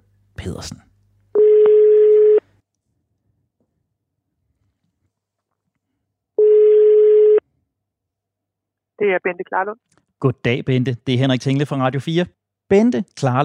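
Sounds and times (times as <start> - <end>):
speech: 0.4 - 0.9, 9.0 - 13.4
ringing tone of an outgoing telephone call to a doctor: 1.4 - 2.4, 6.4 - 7.4.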